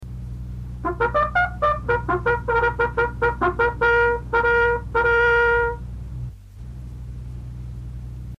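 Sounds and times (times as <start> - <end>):
bugle call: 0.8 - 5.8.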